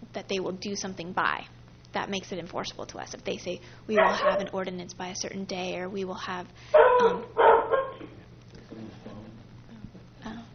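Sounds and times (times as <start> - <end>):
speech: 0.2 - 7.5
dog barking: 4.0 - 4.6, 6.8 - 8.1.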